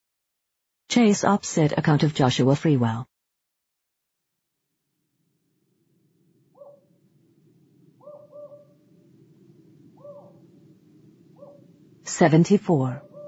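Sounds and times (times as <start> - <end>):
speech: 1.0 - 3.1, 12.1 - 13.1
steady low rumble of noise: 5.6 - 12.1
owl shrieking outside: 6.5 - 7.0, 7.9 - 11.9, 13.0 - 13.2.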